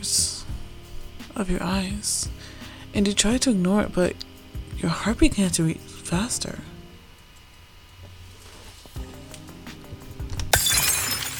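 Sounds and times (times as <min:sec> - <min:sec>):
speech: 0:00.0 - 0:00.3, 0:01.4 - 0:06.7
glass shattering: 0:10.5 - 0:11.3
tinkling glass shards scattering: 0:10.5 - 0:11.3.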